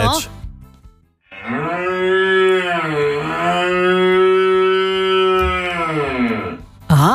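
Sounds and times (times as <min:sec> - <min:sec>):
cow mooing: 0:01.3 - 0:06.6.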